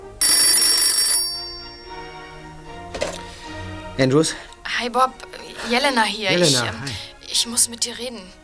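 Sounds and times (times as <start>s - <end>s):
loud telephone bell ringing: 0.2s - 2.6s
speech: 4.0s - 8.4s.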